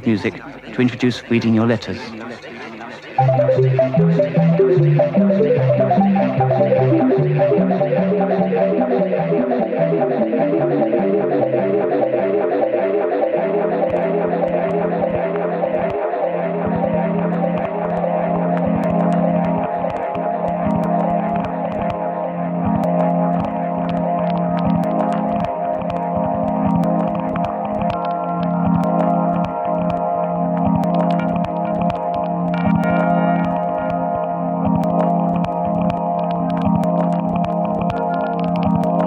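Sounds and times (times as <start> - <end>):
speech: 0.0 - 2.4, 3.3 - 5.8
steady low electronic drone: 2.0 - 39.0
tiny electronic clicks and crackles: 22.8 - 30.0, 30.6 - 34.0, 34.6 - 39.0.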